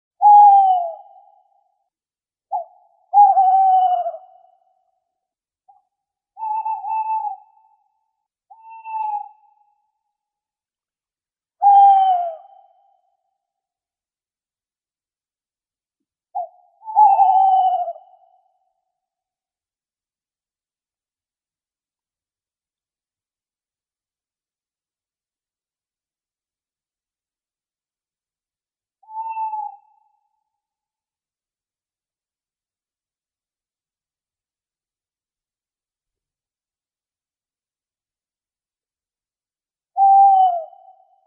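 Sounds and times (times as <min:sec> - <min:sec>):
tawny owl calling: 0:00.2 - 0:01.4, 0:02.5 - 0:04.6, 0:06.4 - 0:07.7, 0:08.5 - 0:09.6, 0:11.6 - 0:12.8, 0:16.4 - 0:18.5, 0:29.0 - 0:30.2, 0:40.0 - 0:41.2.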